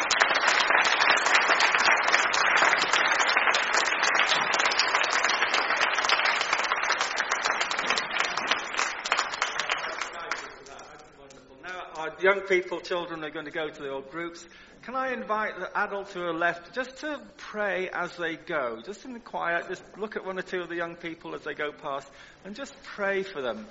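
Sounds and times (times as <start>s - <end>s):
church audience applauding: 0.0s - 10.7s
speech: 12.2s - 23.6s.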